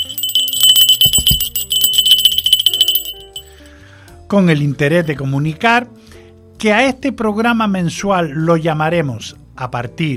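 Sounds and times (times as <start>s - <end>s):
small bell ringing: 0.0s - 3.6s
speech: 4.3s - 6.0s, 6.6s - 10.1s.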